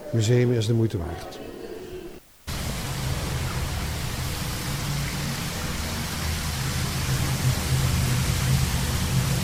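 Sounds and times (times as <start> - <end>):
speech: 0.1 - 1.4
hot spring water flowing: 2.5 - 9.4.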